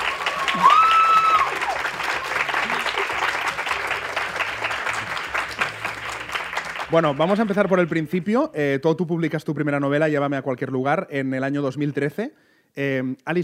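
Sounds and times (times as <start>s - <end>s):
live audience applauding: 0.0s - 8.3s
speech: 6.9s - 13.4s.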